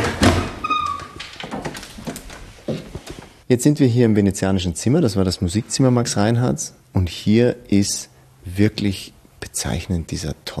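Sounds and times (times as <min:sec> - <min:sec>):
wooden door creaking open: 0:00.0 - 0:03.4
speech: 0:03.5 - 0:10.5.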